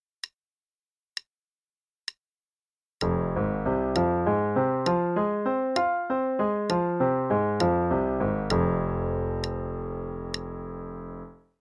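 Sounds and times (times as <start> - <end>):
arpeggios in F minor: 3.0 - 11.5.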